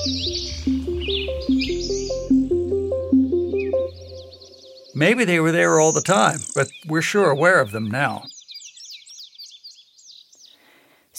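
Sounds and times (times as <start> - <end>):
low sustained drone: 0.0 - 5.0
stepping musical melody: 0.0 - 6.8
birds chirping in a city: 0.0 - 11.1
speech: 0.1 - 0.4, 5.0 - 8.3.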